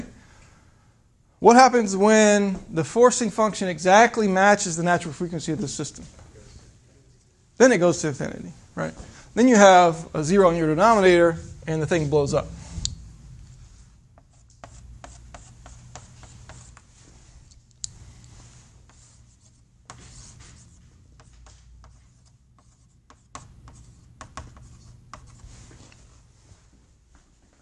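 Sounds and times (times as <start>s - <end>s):
speech: 1.4s - 6.2s, 7.6s - 12.6s
scratchy strokes drawing a graph on a board: 13.4s - 17.5s, 18.2s - 25.8s.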